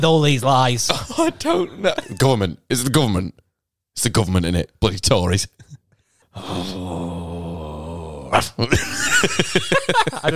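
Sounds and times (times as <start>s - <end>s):
speech: 0.0s - 3.4s, 4.0s - 5.7s, 6.3s - 7.2s, 8.3s - 10.3s
person growling like a dog: 6.4s - 8.7s
laughter: 8.6s - 10.3s.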